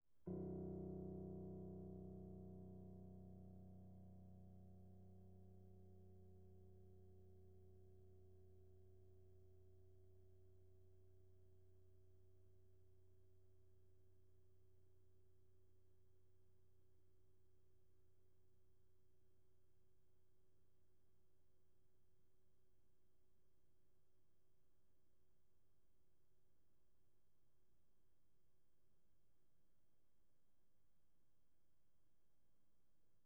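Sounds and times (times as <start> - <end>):
piano note C1 played pianissimo: 0.3 - 8.9.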